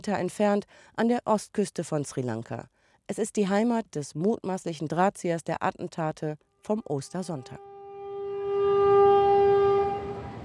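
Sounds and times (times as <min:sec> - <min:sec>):
speech: 0:00.0 - 0:07.7
train horn blast: 0:07.3 - 0:10.4
passenger train rumbling on rails: 0:09.0 - 0:10.4.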